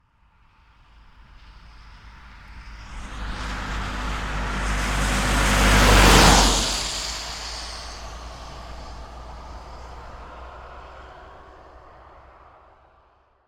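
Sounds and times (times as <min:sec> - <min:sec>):
diesel van passing on slush asphalt at medium speed and constant rpm: 0:02.4 - 0:12.6.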